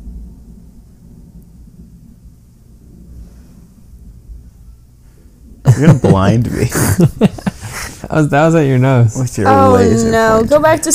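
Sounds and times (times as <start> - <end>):
low rumbling thunder from a storm: 0.0 - 6.0
laughter: 5.7 - 8.2
speech: 5.8 - 7.4, 8.0 - 10.9.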